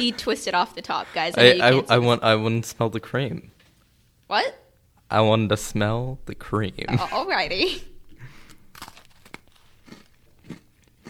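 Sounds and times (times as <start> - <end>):
speech: 0.0 - 3.6, 4.3 - 7.9
crunching while chewing a snack: 8.3 - 11.0.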